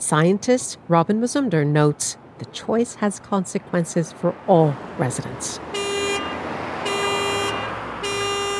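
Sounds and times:
busy city street car traffic rumbling: 0.0 - 8.5
speech: 0.1 - 5.8
car horn honking: 5.7 - 8.5.

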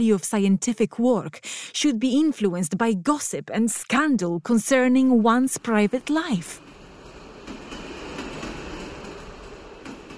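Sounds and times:
speech: 0.0 - 6.7
train rolling along rails: 5.0 - 10.1.

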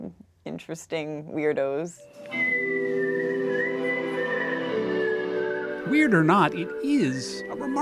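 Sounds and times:
speech: 0.6 - 2.8, 5.9 - 7.8
faint harmonic backing: 1.5 - 7.8
person whistling a melody: 2.1 - 7.8.

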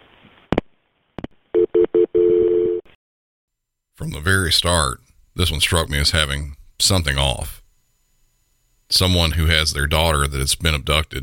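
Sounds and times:
longer steady tone over a phone line: 1.6 - 2.9
speech: 4.0 - 7.6, 8.9 - 11.2.

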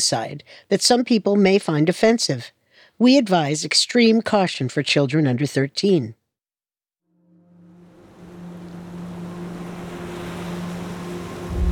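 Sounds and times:
speech: 0.0 - 6.2
passenger boat engine drone: 7.2 - 11.7
wind: 7.4 - 11.7
ocean waves rushing: 7.8 - 11.7.

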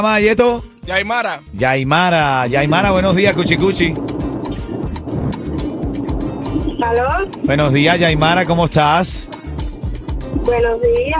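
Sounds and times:
speech: 0.0 - 4.3, 6.8 - 9.4, 10.4 - 11.1
crackling distortion on a phone line: 2.2 - 11.1
wind buffeting roaring across a phone line: 2.3 - 11.1.

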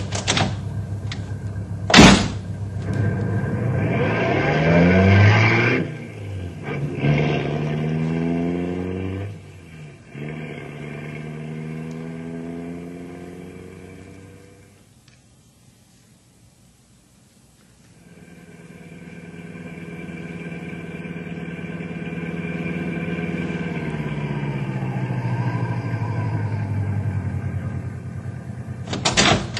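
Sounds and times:
car engine revving as the vehicle pulls away: 0.0 - 14.8, 17.9 - 29.5
car doors slamming: 1.9 - 2.5, 28.8 - 29.5.

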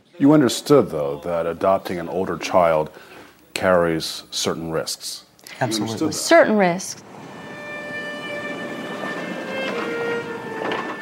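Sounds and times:
speech: 0.2 - 7.1
thin whining metallic tones: 7.0 - 11.0
train rolling along rails: 7.0 - 11.0.

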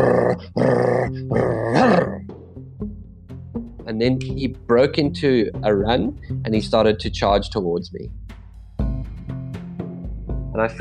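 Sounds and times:
person imitating a lion's growl: 0.0 - 2.2
speech: 0.4 - 2.2, 3.9 - 8.3, 10.6 - 10.7.

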